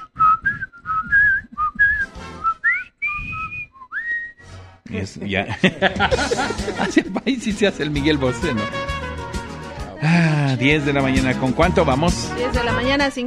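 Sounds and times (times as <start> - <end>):
person whistling a short song melody: 0.0 - 4.4
speech: 4.9 - 8.9, 10.0 - 13.2
person chuckling: 5.5 - 7.4, 10.0 - 10.8.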